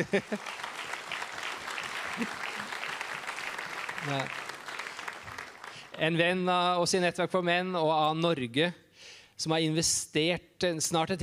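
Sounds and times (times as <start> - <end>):
speech: 0.0 - 0.7, 2.2 - 2.4, 4.0 - 4.4, 6.0 - 8.8, 9.4 - 11.2
laughter: 0.0 - 3.0
audience applause of many hands clapping: 0.0 - 6.0.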